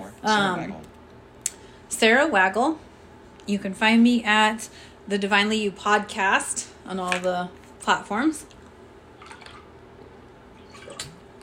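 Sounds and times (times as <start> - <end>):
speech: 0.2 - 0.9, 2.0 - 8.6
person taking a quick sip of water: 9.2 - 11.4.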